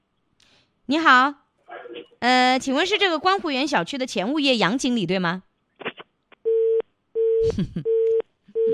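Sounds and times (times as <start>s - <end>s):
speech: 0.9s - 1.4s, 2.2s - 5.5s, 7.4s - 7.9s
telephone busy tone: 6.5s - 8.7s.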